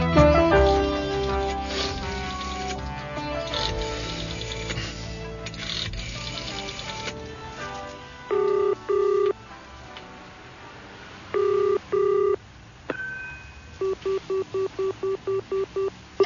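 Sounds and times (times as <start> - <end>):
busy buzzing mechanical clatter: 0.7 - 7.8
phone keypad tones of a number being dialed: 8.3 - 9.4, 11.4 - 12.4, 13.8 - 16.2.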